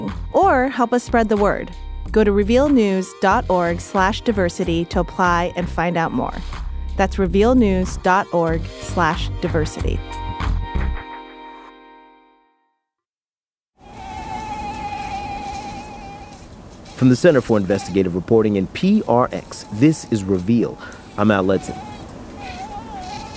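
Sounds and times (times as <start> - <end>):
speech: 0.4 - 10.6, 17.0 - 21.9
Aedes aegypti mosquitoes carrying Zika virus buzzing: 13.8 - 23.3.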